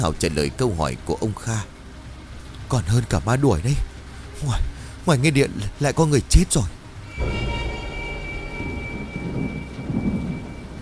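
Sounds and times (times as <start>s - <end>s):
speech: 0.0s - 1.7s, 2.7s - 7.4s
rain-like hiss: 0.0s - 10.7s
deep thunder rumbling: 7.1s - 10.7s.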